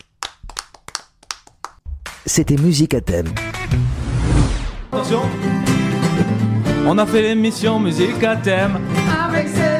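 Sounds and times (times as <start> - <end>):
small group clapping hands: 0.0 - 2.8
speech: 2.2 - 3.8, 4.4 - 5.7, 6.8 - 9.6.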